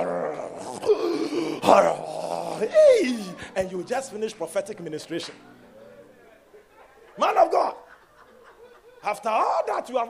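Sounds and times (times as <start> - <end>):
voice loudly imitating snoring with rough groaning moans: 0.0 - 2.8
speech: 1.4 - 5.5, 9.0 - 10.0
laughter: 5.2 - 10.0.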